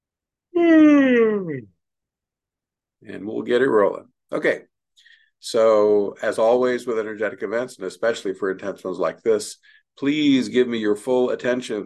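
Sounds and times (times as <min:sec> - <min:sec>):
person yawning: 0:00.6 - 0:01.8
speech: 0:03.0 - 0:04.7, 0:05.4 - 0:11.8.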